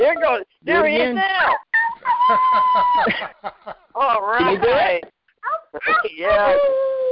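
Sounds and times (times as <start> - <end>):
speech: 0.0 - 5.1, 5.8 - 6.8
young child howling like a wolf: 1.8 - 3.1, 6.3 - 7.1
laughter: 1.8 - 4.8.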